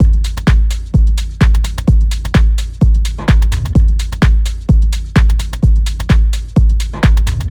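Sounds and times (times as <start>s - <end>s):
beat loop at 128 bpm: 0.0s - 7.4s.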